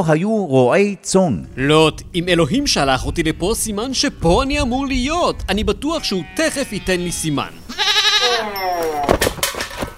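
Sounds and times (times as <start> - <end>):
speech: 0.0 - 7.8
goat bleating: 5.8 - 9.1.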